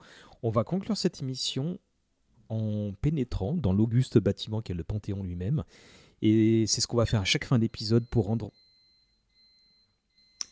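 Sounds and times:
speech: 0.4s - 1.9s, 2.5s - 8.6s
dishwasher end-of-cycle electronic beep: 7.3s - 10.4s.

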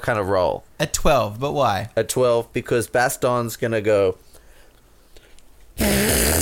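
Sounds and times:
speech: 0.0s - 4.3s
imitation fart made with an armpit or elbow pit: 5.8s - 6.4s.

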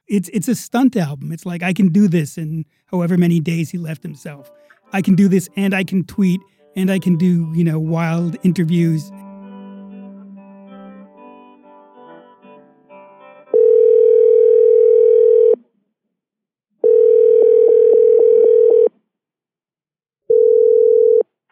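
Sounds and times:
speech: 0.1s - 9.2s
telephone dial tone after dropped call on a hotel cordless phone: 13.5s - 15.6s, 16.8s - 18.9s, 20.3s - 21.2s.

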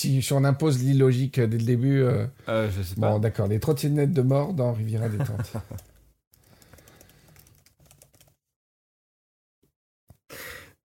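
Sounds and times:
speech: 0.0s - 5.9s
laughter: 5.0s - 5.8s
rapid clattering on a computer keyboard: 5.6s - 8.4s.

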